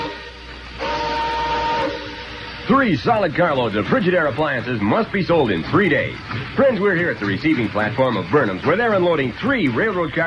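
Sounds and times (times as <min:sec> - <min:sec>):
whistle blast: 0:00.0 - 0:02.8
speech: 0:02.7 - 0:10.2.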